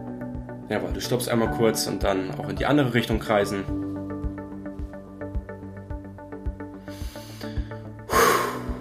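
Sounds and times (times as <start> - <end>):
speech: 0.7 - 3.9
deep breathing in and out during running interval training: 6.6 - 8.8.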